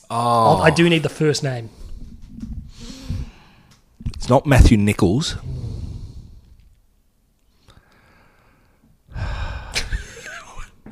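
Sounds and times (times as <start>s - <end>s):
speech: 0.1s - 1.8s, 4.2s - 5.6s
heavy breathing right against a microphone: 1.6s - 3.8s, 5.4s - 6.6s, 7.6s - 9.9s.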